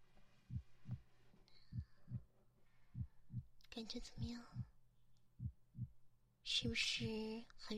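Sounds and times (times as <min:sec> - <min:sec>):
heartbeat heard through a stethoscope: 0:00.5 - 0:01.1, 0:01.7 - 0:02.3, 0:02.9 - 0:03.5, 0:04.1 - 0:04.7, 0:05.4 - 0:06.0, 0:06.6 - 0:07.3
speech: 0:03.8 - 0:04.6, 0:06.5 - 0:07.7.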